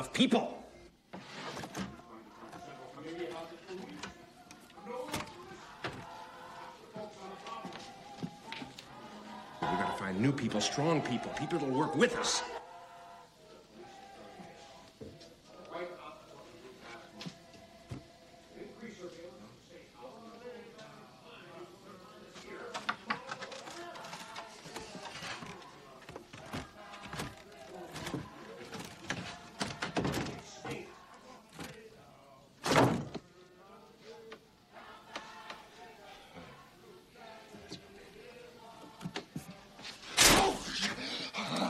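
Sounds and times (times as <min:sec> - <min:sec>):
speech: 0:00.0 - 0:00.6, 0:09.7 - 0:12.6
murmuring voices: 0:00.7 - 0:41.6
heavy door slamming shut: 0:32.6 - 0:33.2.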